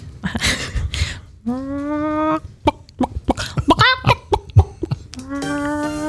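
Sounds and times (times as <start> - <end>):
woman imitating a clucking chicken: 1.4 - 6.0
speech: 1.5 - 2.0.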